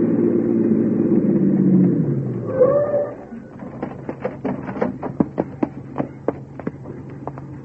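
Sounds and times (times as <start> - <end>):
police car engine rumbling as it pulls to a stop: 0.0 - 7.6
short squeal: 2.4 - 3.5.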